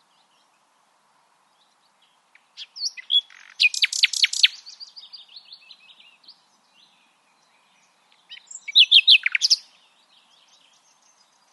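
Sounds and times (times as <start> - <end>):
Common nightingale Luscinia megarhynchos song with whistles and downward-sweeping notes: 1.5 - 11.5.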